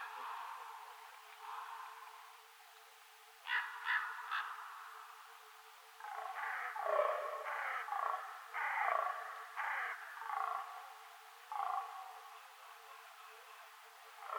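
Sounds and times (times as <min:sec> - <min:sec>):
common raven croaks: 0:00.0 - 0:02.4, 0:03.4 - 0:05.2, 0:06.0 - 0:12.4, 0:14.2 - 0:14.3
rough nasal common raven calls: 0:01.4 - 0:02.4, 0:03.4 - 0:05.2, 0:06.0 - 0:12.4, 0:14.2 - 0:14.3.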